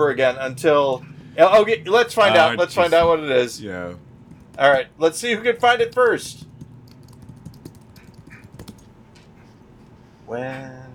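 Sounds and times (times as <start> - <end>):
speech: 0.0 - 6.4, 10.3 - 10.8
faint low hum: 0.0 - 10.9
typing on a computer keyboard: 5.6 - 8.9.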